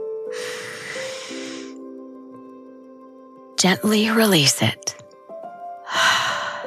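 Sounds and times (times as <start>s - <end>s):
slow deep breath in: 0.3s - 1.8s, 5.9s - 6.6s
speech: 3.6s - 5.0s.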